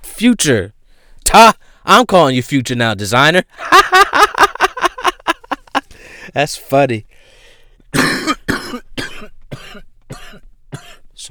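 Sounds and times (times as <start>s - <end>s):
speech: 0.2s - 4.3s, 6.3s - 10.4s
laughter: 3.6s - 6.0s
harsh, chesty coughs: 7.9s - 11.1s.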